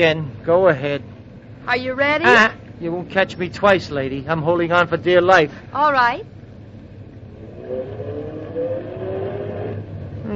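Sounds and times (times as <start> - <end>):
speech: 0.0 - 6.4
car engine revving and accelerating: 7.2 - 10.3.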